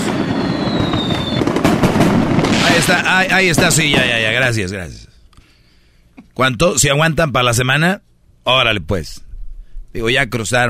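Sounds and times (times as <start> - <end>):
fireworks crackling and popping: 0.0 - 4.6
speech: 2.9 - 5.1, 6.4 - 9.2, 9.9 - 10.6.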